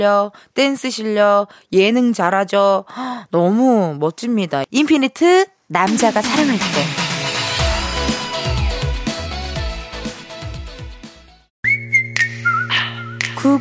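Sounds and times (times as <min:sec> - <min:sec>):
speech: 0:00.0 - 0:07.0
dense pop music: 0:05.9 - 0:11.5
bright whistled melody: 0:11.6 - 0:13.5.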